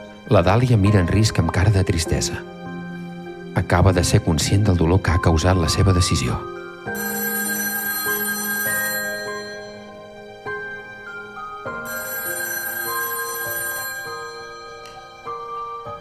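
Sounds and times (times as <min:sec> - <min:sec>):
speech: 0:00.3 - 0:02.6, 0:03.6 - 0:07.2
telephone ringing with electronic bell tones: 0:06.9 - 0:10.0, 0:11.8 - 0:15.6.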